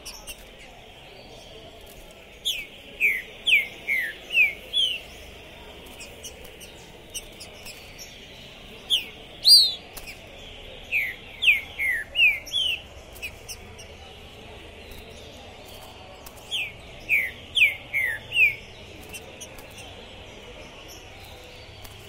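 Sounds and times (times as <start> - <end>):
green-winged saltator captive contest bird singing aggressive challenge song: 2.4 - 5.1, 6.0 - 10.2, 10.9 - 13.9, 16.5 - 20.0.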